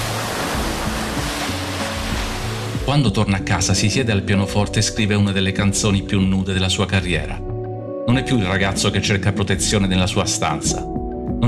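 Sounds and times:
ocean surf washing onto a shore: 0.0s - 3.0s
speech: 2.9s - 7.4s, 8.1s - 11.4s.

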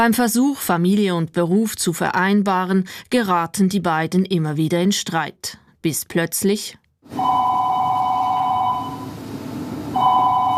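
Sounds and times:
speech: 0.0s - 7.5s
electronic telephone ringing in a stage play: 7.1s - 9.3s, 9.9s - 10.5s.

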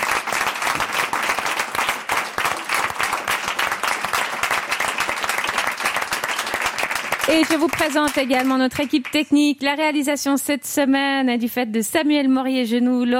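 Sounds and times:
audience applause for the producers and production staff: 0.0s - 9.2s
speech: 7.3s - 13.1s.

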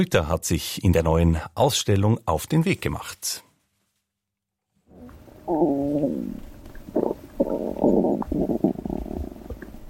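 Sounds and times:
speech: 0.0s - 3.5s, 5.5s - 7.0s, 8.2s - 8.8s
human stomach and digestive system gurgling: 4.9s - 9.8s.

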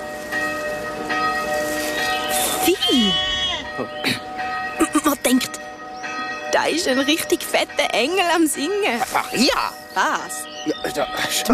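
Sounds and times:
church bell ringing: 0.0s - 11.5s
speech: 2.6s - 4.2s, 6.6s - 11.5s.

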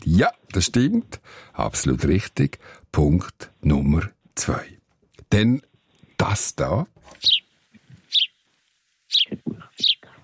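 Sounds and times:
speech: 0.1s - 7.4s
sparrow chirping: 7.2s - 8.4s, 9.1s - 10.2s.

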